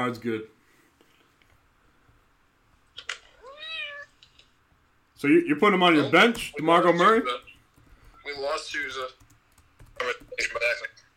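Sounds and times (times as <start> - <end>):
speech: 0.0 - 0.6, 5.2 - 7.5, 8.2 - 9.2, 10.0 - 11.0
cat meowing: 3.4 - 4.2.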